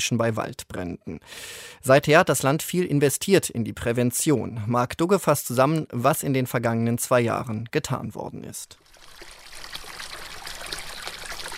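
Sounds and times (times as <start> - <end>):
speech: 0.0 - 9.3
water trickling and splashing in a water basin at the edge of a Portuguese village: 8.8 - 11.5.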